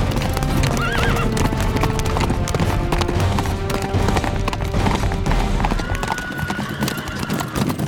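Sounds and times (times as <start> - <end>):
horse hooves clip-clopping pulling a carriage on a cold night: 0.0 - 7.8
horse whinny: 0.5 - 1.4, 5.6 - 7.8.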